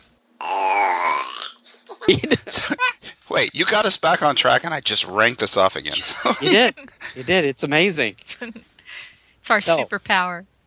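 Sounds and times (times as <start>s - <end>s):
raspy belch: 0.4s - 1.6s
laughter: 1.9s - 8.6s, 9.7s - 9.9s
speech: 2.1s - 8.7s, 9.4s - 10.5s.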